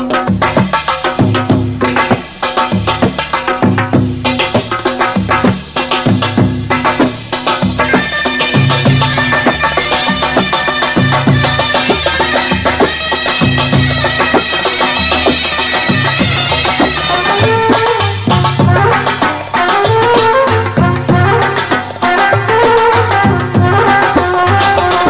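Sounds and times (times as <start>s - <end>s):
mizmar playing belly dance music: 0.0s - 25.0s.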